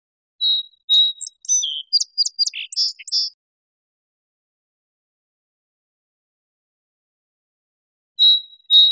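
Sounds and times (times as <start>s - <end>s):
song sparrow singing: 0.4s - 3.4s, 8.2s - 8.9s.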